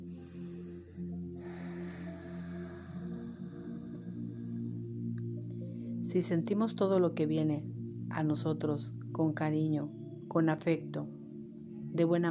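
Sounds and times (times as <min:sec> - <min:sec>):
deep breath in and out: 0:00.0 - 0:06.1
steady low humming drone: 0:00.0 - 0:12.2
speech: 0:06.1 - 0:11.2, 0:11.9 - 0:12.2.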